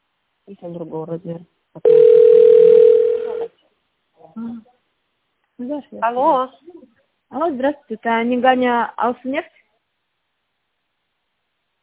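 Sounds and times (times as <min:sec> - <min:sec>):
speech: 0:00.5 - 0:02.4, 0:04.2 - 0:04.8, 0:05.6 - 0:09.6
telephone line tone while a call waits to connect: 0:01.8 - 0:03.5.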